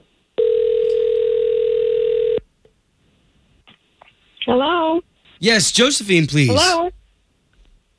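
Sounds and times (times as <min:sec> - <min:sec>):
long steady telephone ringing tone: 0:00.4 - 0:02.4
speech: 0:05.4 - 0:06.9.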